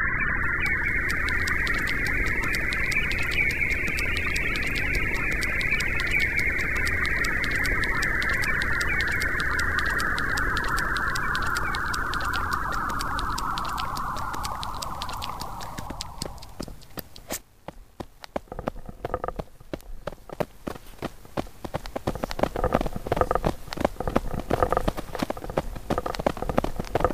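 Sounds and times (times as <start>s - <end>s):
birds: 0.2s - 17.4s, 18.1s - 27.1s
crunching: 0.5s - 27.1s.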